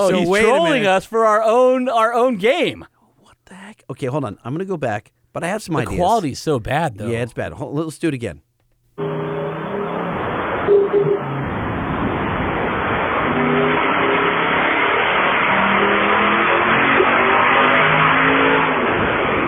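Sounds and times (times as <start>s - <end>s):
speech: 0.0s - 3.0s, 3.7s - 8.4s, 9.0s - 9.2s
V8 car engine revving hard and high: 9.0s - 19.4s.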